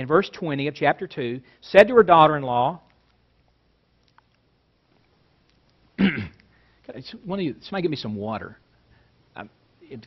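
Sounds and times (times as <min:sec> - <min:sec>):
speech: 0:00.0 - 0:02.9, 0:06.9 - 0:08.6, 0:09.4 - 0:10.0
throat clearing: 0:06.0 - 0:06.5.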